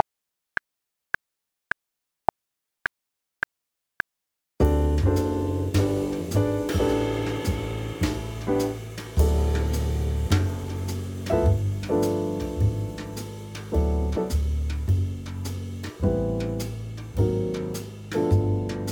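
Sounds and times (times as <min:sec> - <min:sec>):
105 BPM backing track: 0:04.6 - 0:18.8.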